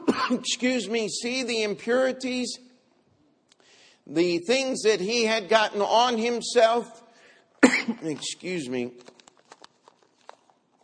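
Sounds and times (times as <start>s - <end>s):
coughing: 0.0s - 0.5s, 7.6s - 8.2s
speech: 0.3s - 2.7s, 4.0s - 7.0s, 7.6s - 9.2s
throat clearing: 7.6s - 8.0s
small clicks and rustles: 8.9s - 10.8s.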